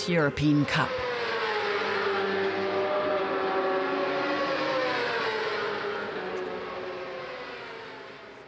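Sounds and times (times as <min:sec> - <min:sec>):
speech: 0:00.0 - 0:01.0
racing motorcycle screaming at high revs on a race track: 0:00.6 - 0:08.4.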